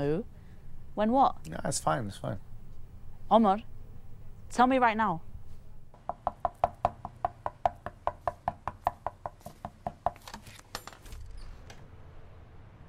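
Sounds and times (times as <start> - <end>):
speech: 1.0 - 2.5, 3.3 - 3.7, 4.5 - 5.3
rapid insistent knocking on a door: 6.0 - 10.2.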